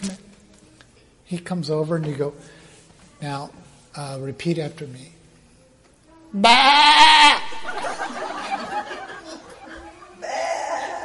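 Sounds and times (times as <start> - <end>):
speech: 1.3 - 2.6, 3.2 - 5.2, 6.3 - 6.9
person imitating a goat or sheep bleat: 6.4 - 7.5
laughter: 7.5 - 11.0.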